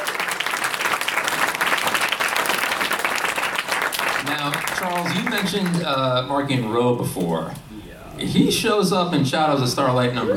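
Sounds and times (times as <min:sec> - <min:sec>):
crowd applauding at a convention panel: 0:00.0 - 0:06.2
speech: 0:04.9 - 0:07.6, 0:08.2 - 0:10.3.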